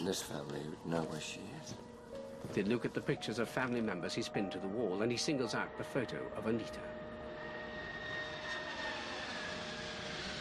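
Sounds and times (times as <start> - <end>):
speech: 0.0 - 7.0
airplane engine drone in the cabin: 5.6 - 10.3.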